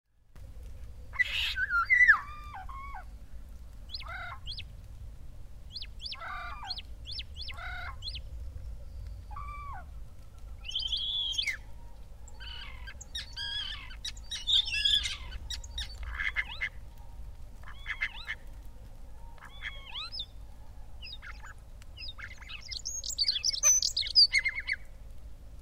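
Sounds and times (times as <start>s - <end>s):
starling calling: 1.1s - 3.1s, 3.9s - 4.6s, 5.7s - 8.2s, 9.2s - 9.9s, 10.6s - 16.8s, 19.4s - 20.4s, 21.0s - 24.9s.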